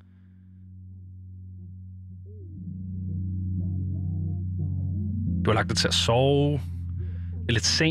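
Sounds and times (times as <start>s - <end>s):
faint melodic sounds: 0.0s - 7.8s
1990s Atlanta rap track with heavy rumbling bass: 2.4s - 7.8s
speech: 5.5s - 6.8s, 7.5s - 7.8s.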